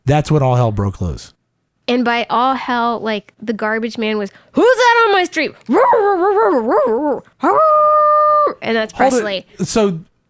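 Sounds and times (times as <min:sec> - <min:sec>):
speech: 0:00.1 - 0:08.0, 0:08.6 - 0:10.1
dog howling: 0:05.7 - 0:08.6.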